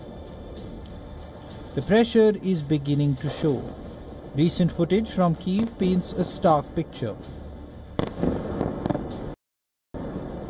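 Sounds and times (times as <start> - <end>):
rumbling background: 0.0 - 9.4, 10.0 - 10.4
speech: 1.8 - 3.8, 4.4 - 7.4
missile impact explosions: 8.0 - 9.4.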